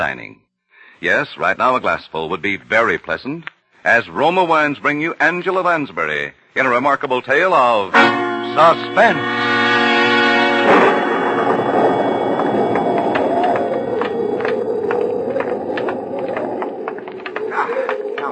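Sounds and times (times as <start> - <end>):
speech: 0.0 - 0.4, 1.0 - 9.5
deep rolling rumble of thunder from an approaching storm: 9.4 - 18.2.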